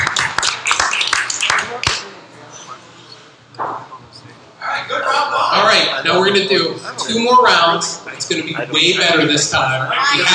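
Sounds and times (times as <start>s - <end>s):
scattered hand clapping from a small group: 0.0s - 2.1s
room murmur: 0.0s - 10.3s
laughter: 4.9s - 10.3s
speech: 6.1s - 10.3s.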